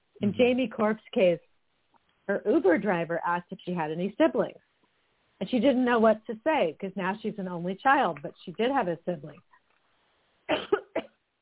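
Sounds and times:
speech: 0:00.2 - 0:01.5, 0:02.3 - 0:04.7, 0:05.4 - 0:09.5
sharp throaty coughs: 0:10.5 - 0:11.2.

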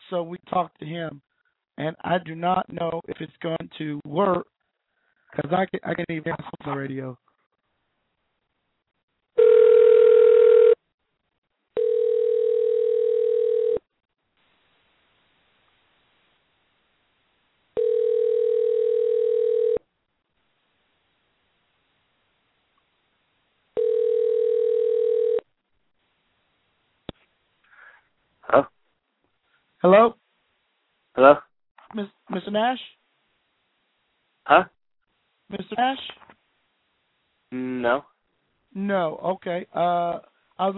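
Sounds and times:
speech: 0:00.1 - 0:04.5, 0:05.3 - 0:07.2, 0:28.5 - 0:28.7, 0:29.8 - 0:30.2, 0:31.2 - 0:33.0, 0:34.5 - 0:34.8, 0:35.5 - 0:36.3, 0:37.5 - 0:38.1, 0:38.8 - 0:40.7
telephone line buzzing tones while calling someone back: 0:09.4 - 0:10.8, 0:11.8 - 0:13.8, 0:17.8 - 0:19.8, 0:23.8 - 0:25.4.

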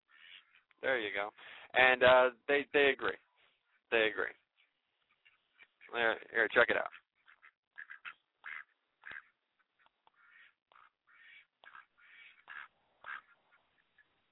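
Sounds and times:
ducks quacking: 0:00.1 - 0:00.6, 0:05.2 - 0:14.1
speech: 0:00.8 - 0:03.3, 0:03.9 - 0:04.4, 0:05.9 - 0:07.0.

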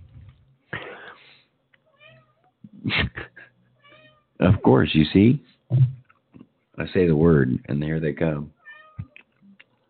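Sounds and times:
cat meowing: 0:01.9 - 0:02.4, 0:03.8 - 0:04.2, 0:08.6 - 0:09.2
speech: 0:04.4 - 0:06.0, 0:06.8 - 0:08.6.

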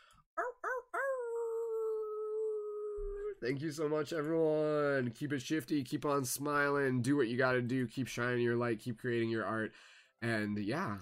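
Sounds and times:
person imitating a wolf howl to end a gathering: 0:00.4 - 0:03.4
speech: 0:03.0 - 0:11.0.

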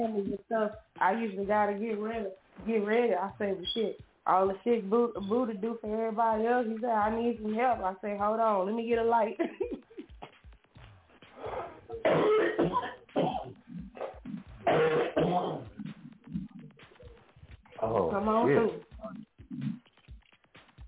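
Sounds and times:
speech: 0:00.0 - 0:09.9, 0:11.4 - 0:13.3, 0:17.8 - 0:19.8
harsh hacking coughing fit with gasps: 0:11.4 - 0:15.7.

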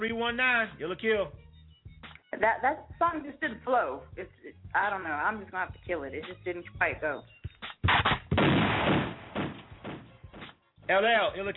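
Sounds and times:
speech: 0:00.0 - 0:01.4, 0:02.4 - 0:08.0, 0:10.9 - 0:11.5
gunshot sound effect with a rumbling tail: 0:07.8 - 0:10.1.

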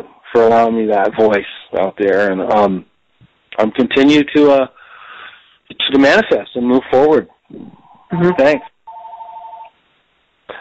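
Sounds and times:
speech: 0:00.4 - 0:02.9, 0:03.6 - 0:04.8, 0:05.7 - 0:08.7
landline house phone ringing: 0:08.3 - 0:09.8.

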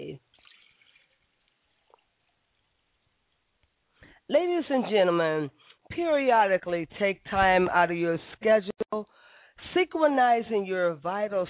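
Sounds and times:
water poured into a glass: 0:00.0 - 0:02.8
faint water drip: 0:00.0 - 0:04.2
speech: 0:04.3 - 0:11.4.

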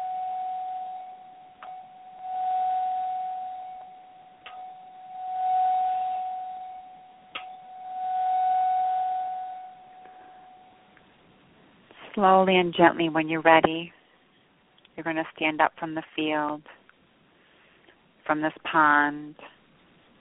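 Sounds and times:
bell struck with sustained humming ring: 0:00.0 - 0:11.0
speech: 0:12.2 - 0:14.0, 0:15.0 - 0:16.8, 0:18.3 - 0:19.5.

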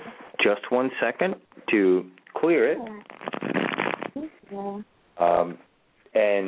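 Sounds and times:
speech: 0:00.4 - 0:03.7, 0:04.5 - 0:06.4
deck of cards riffle shuffled for a card reading: 0:02.9 - 0:04.2.

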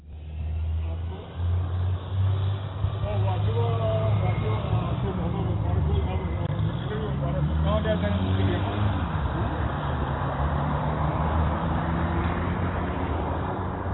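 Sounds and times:
bus engine rumbling along the street: 0:00.0 - 0:13.9
faint voices: 0:02.8 - 0:10.3.

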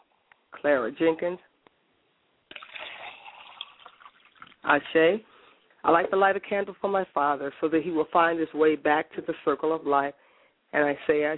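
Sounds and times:
speech: 0:00.6 - 0:01.5, 0:04.7 - 0:11.3
liquid poured out as a libation: 0:02.5 - 0:04.7.

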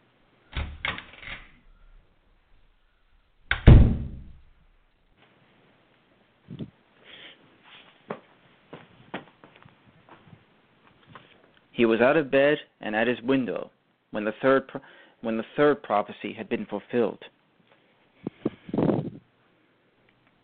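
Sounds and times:
front door shutting with a heavy resonant thud: 0:00.5 - 0:01.4, 0:03.5 - 0:04.4
front door latch clicks: 0:00.5 - 0:02.0
speech: 0:11.8 - 0:17.4.

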